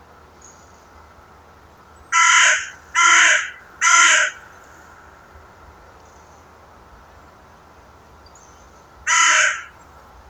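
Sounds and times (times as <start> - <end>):
Corvus corone carrion crow cawing: 2.1 - 5.3, 9.1 - 9.8.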